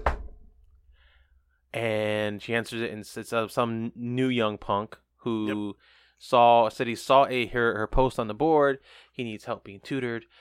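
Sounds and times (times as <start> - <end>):
knock on a door: 0.0 - 0.4
speech: 1.7 - 10.3.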